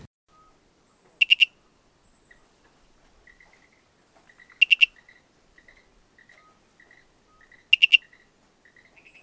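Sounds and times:
sharp triple-pulsed owl call: 0.4 - 2.4, 3.3 - 9.2
frog chirps: 1.2 - 1.6, 3.2 - 9.2.

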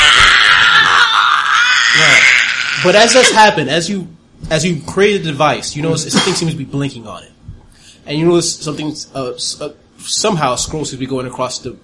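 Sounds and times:
creature screaming: 0.0 - 3.4
speech: 2.8 - 7.4, 8.0 - 11.8.

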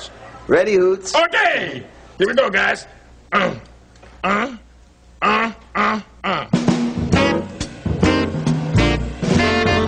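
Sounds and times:
speech: 0.5 - 4.6
band playing: 6.5 - 9.8
two saxophones playing call and response: 7.1 - 9.8.

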